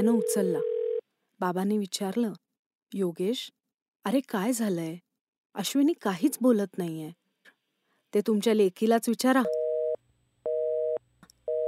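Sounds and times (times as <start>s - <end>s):
speech: 0.0s - 0.7s, 1.4s - 5.0s, 5.6s - 7.2s, 8.1s - 9.6s
mobile phone busy tone beeps after a call is cut off: 9.5s - 11.6s.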